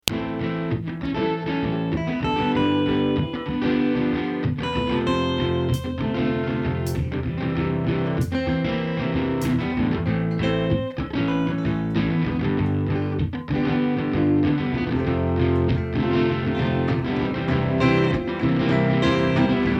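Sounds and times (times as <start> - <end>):
ambient guitar mix: 0.1 - 19.7.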